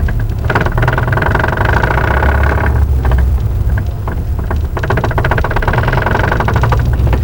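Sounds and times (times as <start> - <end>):
damaged car engine: 0.0 - 7.2.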